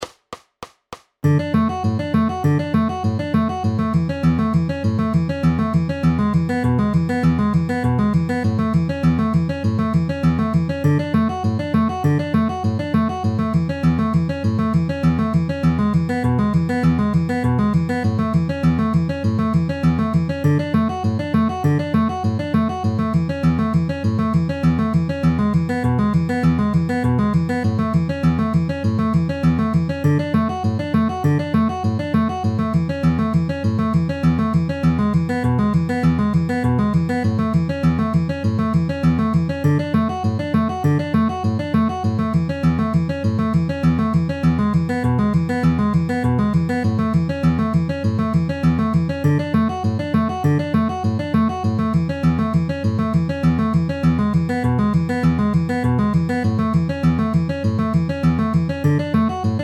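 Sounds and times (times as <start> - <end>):
fingerpicked guitar with alternating bass: 1.2 - 59.6.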